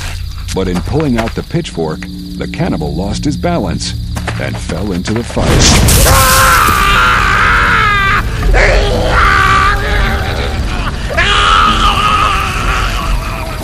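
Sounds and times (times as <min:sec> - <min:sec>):
speech: 0:00.5 - 0:06.8
man screaming in pain: 0:06.0 - 0:13.6.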